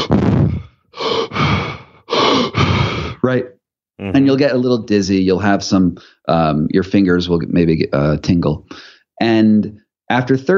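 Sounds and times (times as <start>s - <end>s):
deep quick breaths of a breathing-method exercise: 0.0s - 3.2s, 8.7s - 9.1s
speech: 3.2s - 10.5s.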